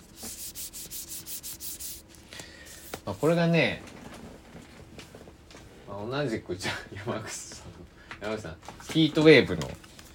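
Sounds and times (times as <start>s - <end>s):
fingers rubbing a cardboard paper-jacket sleeve of a live CD album: 0.0s - 2.0s
speech: 3.1s - 3.9s, 6.0s - 7.5s, 8.2s - 9.8s.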